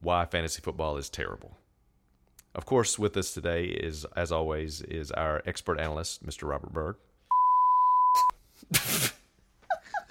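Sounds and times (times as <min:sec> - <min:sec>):
speech: 0:00.0 - 0:01.6, 0:02.6 - 0:07.1
high censor bleep over a swear word: 0:07.3 - 0:08.4.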